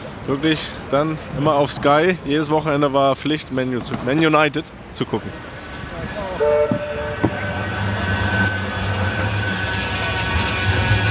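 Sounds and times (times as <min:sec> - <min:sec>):
speech: 0:00.2 - 0:06.8
tram in Manchester rolling past: 0:05.0 - 0:11.0
squealing metallic overtones of a tram: 0:05.6 - 0:11.0
brief horn-like tone of a tram: 0:06.3 - 0:11.0.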